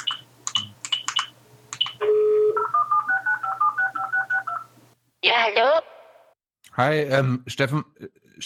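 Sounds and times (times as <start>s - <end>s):
short phone keypad blips: 0.0s - 4.7s
steady phone tone: 2.0s - 4.7s
speech: 5.3s - 5.9s, 6.8s - 8.4s.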